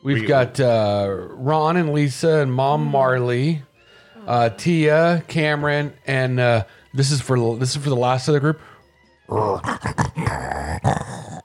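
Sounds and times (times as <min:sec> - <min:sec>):
speech: 0:00.0 - 0:08.7, 0:09.3 - 0:11.1
dog growling in rough rumbling bursts: 0:09.3 - 0:11.4.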